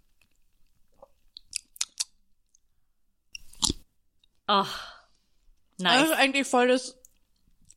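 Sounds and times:
crisp biting and crunchy chewing of food: 1.0s - 2.6s, 3.3s - 3.8s
speech: 4.5s - 4.9s, 5.8s - 7.0s.

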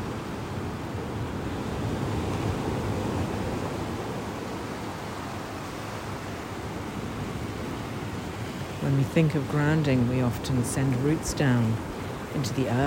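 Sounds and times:
ocean surf waves rolling and breaking: 0.0s - 12.8s
speech: 8.9s - 12.8s.

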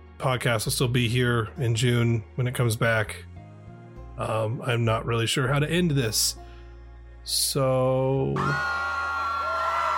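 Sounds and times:
speech: 0.2s - 3.3s, 4.2s - 6.5s, 7.2s - 8.8s
high-pitched scream: 8.4s - 9.9s.

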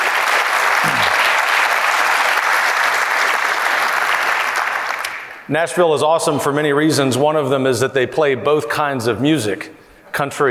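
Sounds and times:
large audience applause: 0.0s - 5.5s
speech: 5.5s - 10.4s.

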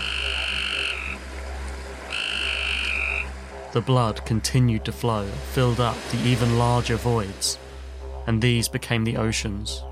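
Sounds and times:
frogs croaking in chorus: 0.0s - 3.8s
speech: 3.7s - 7.6s, 8.3s - 9.8s.

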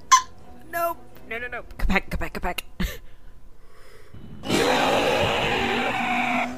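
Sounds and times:
speech: 0.9s - 2.7s
person imitating an owlbear's bellow: 4.4s - 6.5s.

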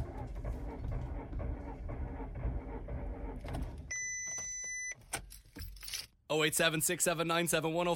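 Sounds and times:
car engine rumbling: 0.0s - 3.9s
speech: 6.3s - 7.9s.

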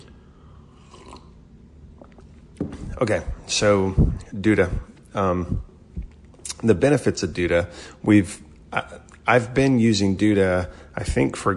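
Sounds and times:
soft slurping: 0.0s - 3.4s
sipping hot coffee: 0.5s - 1.4s
speech: 3.0s - 5.7s, 6.6s - 11.5s.

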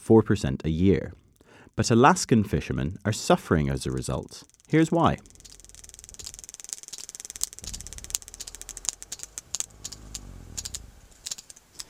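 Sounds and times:
speech: 0.1s - 1.2s, 1.8s - 5.4s
sperm whale clicks recorded underwater: 5.2s - 11.8s
steady low murky underwater rumble: 7.5s - 11.2s.

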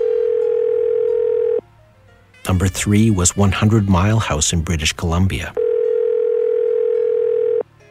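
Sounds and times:
telephone ringback tone: 0.0s - 1.6s, 5.6s - 7.7s
speech: 2.4s - 5.6s.

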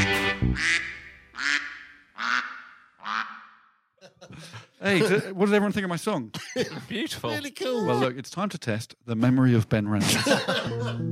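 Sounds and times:
duck quacking: 0.0s - 3.6s
laughter: 4.0s - 5.6s, 6.4s - 8.2s, 10.0s - 11.1s
speech: 4.8s - 11.1s.

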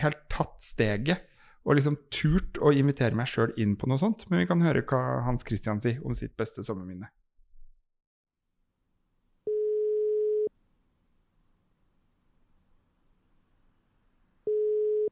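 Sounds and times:
speech: 0.0s - 7.2s
telephone ringback tone on an outgoing call: 9.5s - 10.5s, 14.5s - 15.0s.

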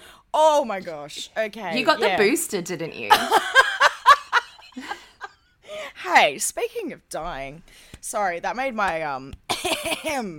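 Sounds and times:
speech: 0.4s - 3.6s, 6.2s - 10.3s
raspy phlegmy smoker's cough: 9.5s - 10.2s.

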